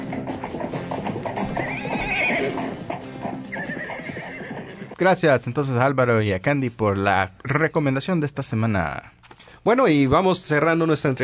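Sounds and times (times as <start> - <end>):
horse neighing: 0.0 - 5.0
horses galloping: 0.0 - 5.3
speech: 5.0 - 11.2.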